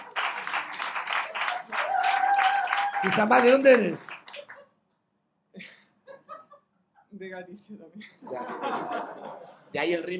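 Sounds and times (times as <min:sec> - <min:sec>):
audience applause: 0:00.0 - 0:04.6
speech: 0:03.0 - 0:04.1, 0:07.3 - 0:10.1
laughter: 0:05.6 - 0:07.1, 0:08.0 - 0:09.7.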